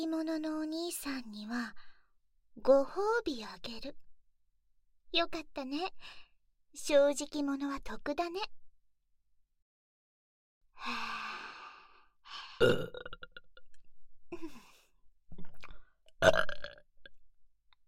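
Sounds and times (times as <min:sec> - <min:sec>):
speech: 0:00.0 - 0:01.9, 0:02.6 - 0:04.0, 0:05.1 - 0:06.2, 0:06.8 - 0:08.6, 0:10.8 - 0:11.4, 0:12.3 - 0:13.3, 0:14.3 - 0:14.6, 0:16.2 - 0:16.8
loud guttural belches: 0:12.6 - 0:13.5, 0:16.2 - 0:16.8.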